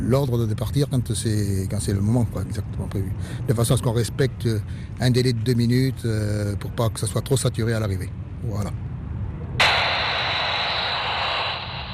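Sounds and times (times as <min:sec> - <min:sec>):
speech: 0:00.1 - 0:08.8
bright static hiss on an aircraft radio frequency: 0:09.6 - 0:11.9.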